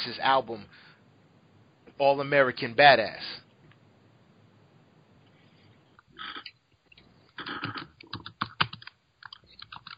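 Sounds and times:
speech: 0:00.0 - 0:00.8, 0:02.0 - 0:03.4
computer keyboard typing: 0:06.3 - 0:09.9.

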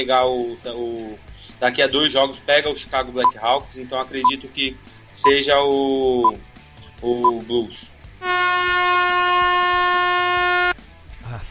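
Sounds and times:
speech: 0:00.0 - 0:09.5
loud sustained brassy horn blast: 0:08.2 - 0:10.8.

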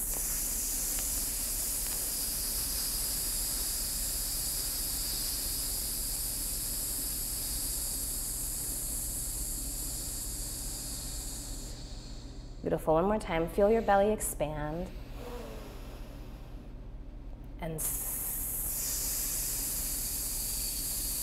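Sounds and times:
person exhaling through the teeth imitating a snake in a breathing exercise: 0:00.0 - 0:12.2, 0:15.1 - 0:16.1, 0:17.8 - 0:21.2
speech: 0:12.6 - 0:15.0, 0:17.7 - 0:18.0.

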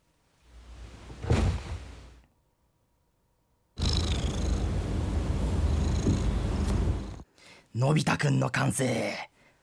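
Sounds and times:
cat purr sound effect: 0:03.8 - 0:07.2
speech: 0:07.8 - 0:09.3.

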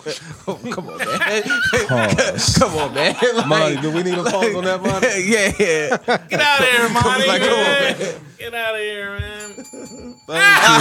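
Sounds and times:
laughter: 0:00.0 - 0:08.5, 0:09.2 - 0:10.7
speech: 0:00.0 - 0:10.7
bright bell ringing: 0:08.7 - 0:10.7.

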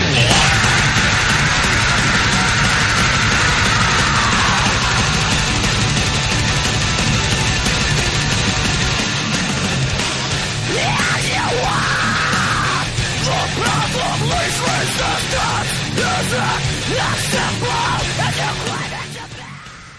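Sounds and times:
shouted screaming vocals in a recent heavy song: 0:00.0 - 0:05.5, 0:10.6 - 0:19.9
loud dense recent heavy song with driving full-band instrumentation: 0:00.0 - 0:19.9.

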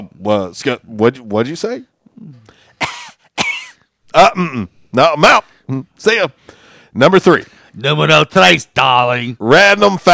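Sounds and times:
speech: 0:00.0 - 0:01.9, 0:04.2 - 0:10.1
faint breathy sounds: 0:02.2 - 0:02.8, 0:06.4 - 0:07.8
dry cough: 0:02.7 - 0:04.7.

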